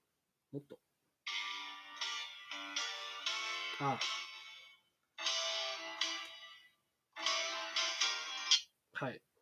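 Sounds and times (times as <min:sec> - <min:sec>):
speech: 0:00.5 - 0:00.9, 0:03.8 - 0:04.2, 0:09.0 - 0:09.3
bright electronic smartphone ringtone on folding phone: 0:01.3 - 0:08.6.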